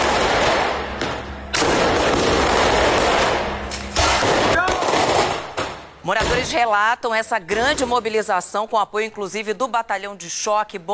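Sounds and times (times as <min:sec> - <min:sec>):
firework rocket bursting in crackling bangs: 0:00.0 - 0:06.5
speech: 0:06.1 - 0:10.9.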